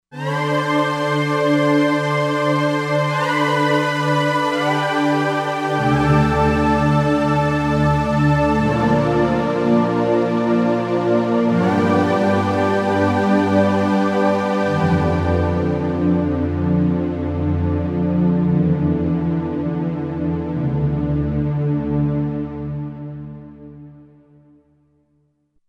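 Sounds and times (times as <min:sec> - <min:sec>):
fifth synth pad on a Roland Fantom XR: 0:00.2 - 0:23.7.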